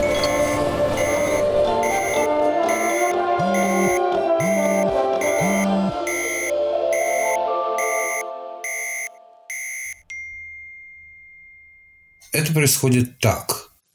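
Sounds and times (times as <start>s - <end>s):
many phones chiming with air raid alert tones: 0.0s - 10.4s
speech: 12.6s - 13.6s.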